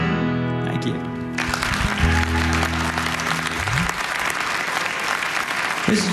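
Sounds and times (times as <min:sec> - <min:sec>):
speech: 0:00.6 - 0:01.1, 0:05.9 - 0:06.1
live audience applauding: 0:01.0 - 0:06.1.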